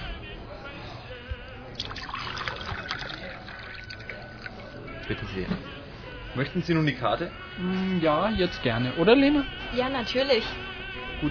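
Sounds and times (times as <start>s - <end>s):
murmur of voices: 0.0s - 11.2s
still water poured into a glass: 1.8s - 5.1s
speech: 5.1s - 11.2s.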